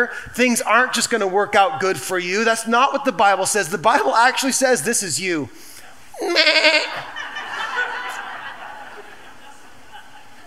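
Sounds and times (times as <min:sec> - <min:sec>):
speech: 0:00.0 - 0:07.2
low hiss of noise: 0:00.0 - 0:10.4
sheep giving a loud quavering bleat: 0:06.2 - 0:07.1
laughter: 0:06.2 - 0:10.4.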